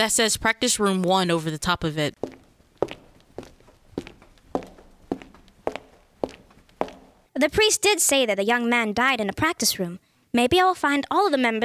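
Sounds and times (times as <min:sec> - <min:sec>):
speech: 0:00.0 - 0:02.3, 0:07.4 - 0:11.6
footsteps walking into a building on a hard surface: 0:02.2 - 0:07.3.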